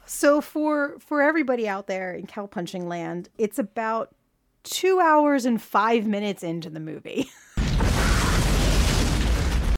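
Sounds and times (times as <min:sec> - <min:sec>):
speech: 0:00.1 - 0:07.5
loud continuous movie-style explosions: 0:07.6 - 0:09.7.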